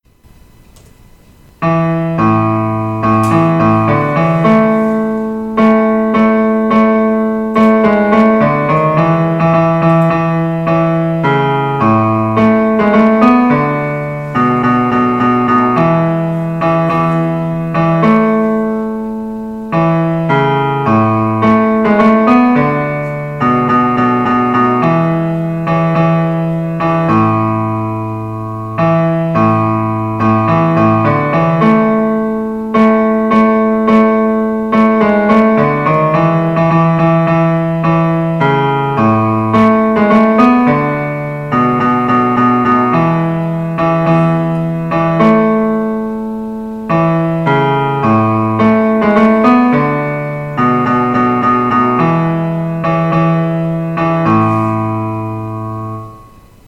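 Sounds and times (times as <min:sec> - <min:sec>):
bass piano: 0:00.2 - 0:56.6.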